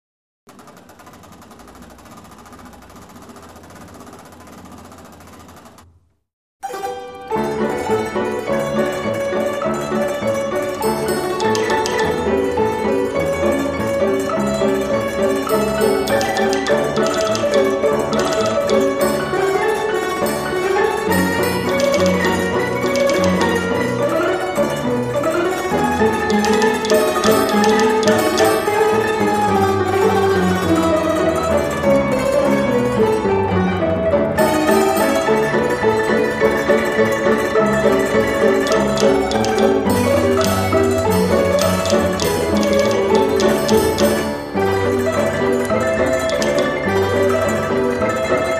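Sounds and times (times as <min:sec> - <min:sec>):
street piano playing in Italy: 0:06.7 - 0:48.5.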